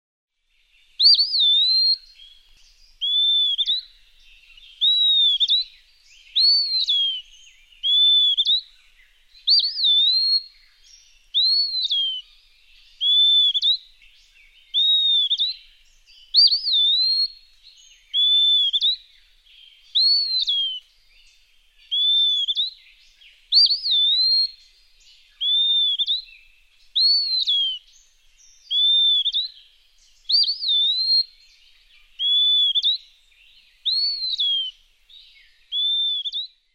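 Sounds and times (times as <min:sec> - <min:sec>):
Eastern Wood Pewee singing at dawn: 0:00.3 - 0:36.7.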